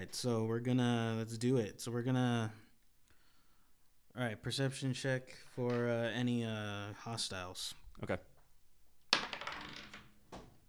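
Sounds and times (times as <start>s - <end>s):
speech: 0.0s - 2.6s, 4.2s - 8.3s
dice rolled during a tabletop role-playing game: 5.7s - 6.1s, 9.1s - 10.6s.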